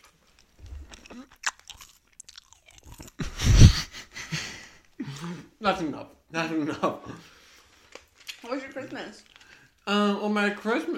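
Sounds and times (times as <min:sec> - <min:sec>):
crunching and chewing Skittles candy: 0:00.0 - 0:03.3, 0:07.5 - 0:09.9
speech: 0:05.6 - 0:07.3, 0:08.5 - 0:10.9.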